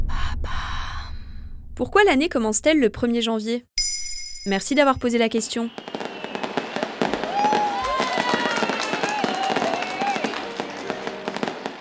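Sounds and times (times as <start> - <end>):
speech: 1.8 - 3.7, 4.4 - 6.0
New Year celebration fireworks bangs and crackles: 5.6 - 11.7.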